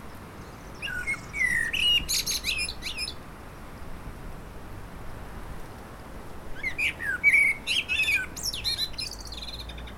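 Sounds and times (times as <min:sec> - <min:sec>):
Common blackbird singing: 0:00.4 - 0:03.2, 0:06.6 - 0:09.9.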